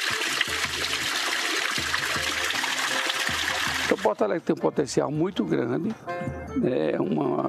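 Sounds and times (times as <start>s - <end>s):
spring water running and splashing from a spout: 0.0s - 4.4s
speech: 4.1s - 7.4s.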